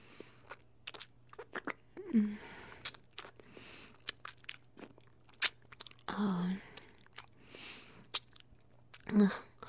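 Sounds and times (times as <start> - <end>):
faint steady hum: 0.0 - 9.6
salty food being bitten and chewed: 0.2 - 1.8, 2.8 - 6.1, 6.8 - 7.4, 8.0 - 9.6.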